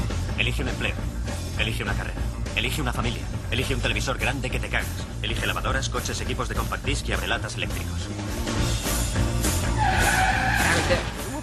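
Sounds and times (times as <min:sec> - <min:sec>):
rumble of car engine and road noise: 0:00.0 - 0:11.4
speech: 0:00.4 - 0:08.9, 0:10.9 - 0:11.1
tire screech of a car braking hard: 0:09.5 - 0:11.4.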